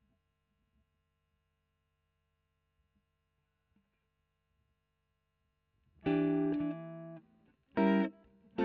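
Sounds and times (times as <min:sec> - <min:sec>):
electric guitar: 0:06.0 - 0:08.6.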